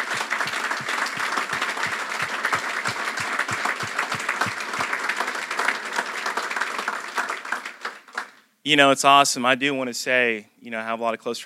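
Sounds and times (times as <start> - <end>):
crowd applause: 0.0 - 8.4
speech: 8.7 - 11.4.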